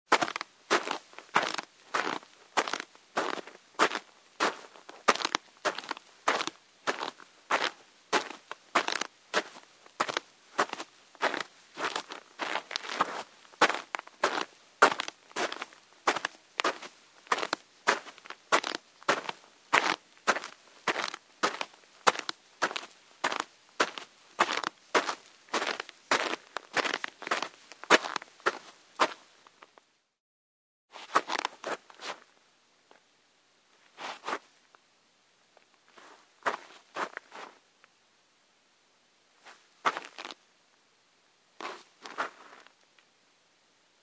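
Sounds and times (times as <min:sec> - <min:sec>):
footsteps on snow: 0:00.1 - 0:29.3, 0:30.9 - 0:32.3, 0:33.9 - 0:34.5, 0:35.9 - 0:37.6, 0:39.4 - 0:40.4, 0:41.6 - 0:42.7.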